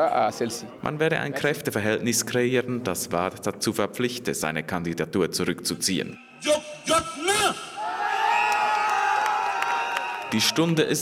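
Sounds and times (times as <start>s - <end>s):
speech: 0.0s - 7.2s, 10.3s - 11.0s
people shouting: 7.2s - 10.3s
crowd cheering and whooping at a political demonstration: 7.7s - 10.8s.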